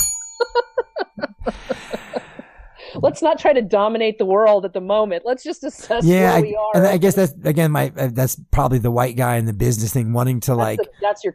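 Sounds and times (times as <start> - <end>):
small bell dinging: 0.0 - 1.4
laughter: 0.4 - 3.2, 5.9 - 8.4, 9.2 - 11.3
speech: 3.0 - 11.3.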